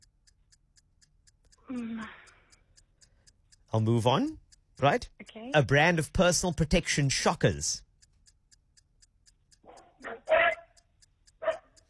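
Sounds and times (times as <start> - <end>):
faint steady ticking: 0.0 - 11.8
speech: 1.7 - 2.2, 3.7 - 7.8
dog barking: 9.6 - 10.8, 11.4 - 11.8.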